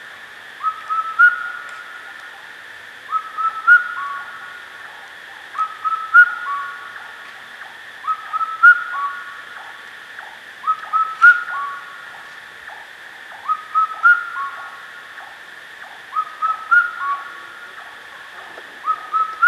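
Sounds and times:
faint hiss-like hum: 0:00.0 - 0:19.4
Indian cuckoo whistling its four-note song: 0:00.6 - 0:02.4, 0:03.1 - 0:04.5, 0:05.5 - 0:07.1, 0:08.0 - 0:09.4, 0:10.6 - 0:12.0, 0:13.4 - 0:19.4.

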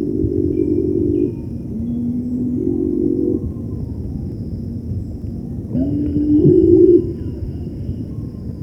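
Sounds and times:
cinnamon-bellied imperial pigeon humming moans: 0:00.2 - 0:03.8, 0:05.7 - 0:07.8.

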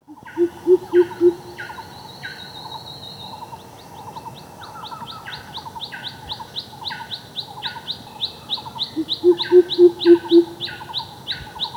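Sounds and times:
greater coucal giving deep hoots: 0:00.2 - 0:01.7, 0:09.0 - 0:10.8
other birds chirping and trilling: 0:00.2 - 0:02.0, 0:08.6 - 0:11.7.

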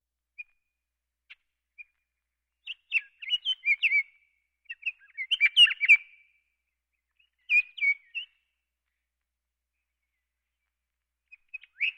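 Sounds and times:
Scott's oriole song: 0:02.6 - 0:06.4, 0:07.2 - 0:08.5, 0:11.3 - 0:11.9.

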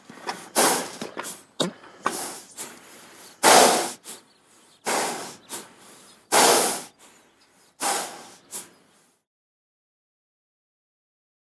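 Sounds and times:
horse breathing hard after a run: 0:00.0 - 0:09.2.

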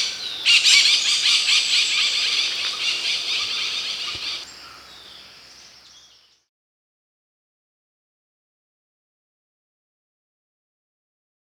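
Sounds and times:
Layard's parakeet harsh screechy calls: 0:00.0 - 0:04.4.

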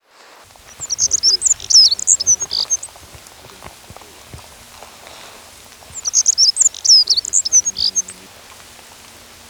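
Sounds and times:
Black-throated accentor song: 0:00.5 - 0:09.4.

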